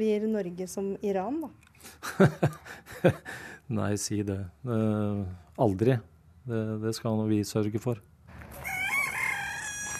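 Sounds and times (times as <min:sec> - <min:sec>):
speech: 0:00.0 - 0:08.6
faint outdoor background: 0:00.0 - 0:09.9
laughter: 0:02.0 - 0:03.4
rooster crowing: 0:08.5 - 0:09.9.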